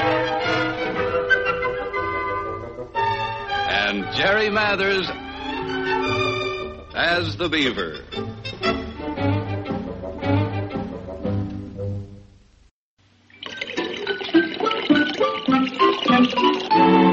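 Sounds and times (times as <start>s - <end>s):
bright musical passage: 0.0s - 11.2s, 14.8s - 17.1s
speech: 3.9s - 5.2s, 7.0s - 8.6s
water pouring in a splashing stream: 13.2s - 17.1s.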